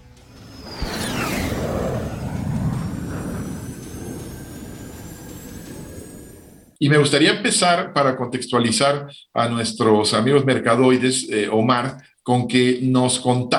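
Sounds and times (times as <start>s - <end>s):
takeoff sound effect falling whistle: 0.0s - 6.7s
takeoff sound effect jet-aircraft roar: 0.0s - 6.8s
speech: 6.8s - 13.5s.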